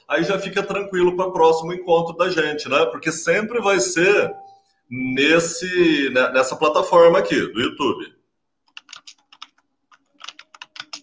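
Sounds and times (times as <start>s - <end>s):
speech: 0.1s - 8.2s
rapid typing on a computer keyboard into an online chat: 8.6s - 11.0s.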